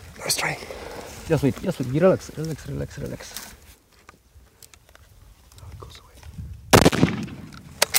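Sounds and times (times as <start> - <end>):
speech: 0.3 - 0.7, 1.3 - 3.5
gunshot fired at an animal during a hunt: 6.7 - 7.8.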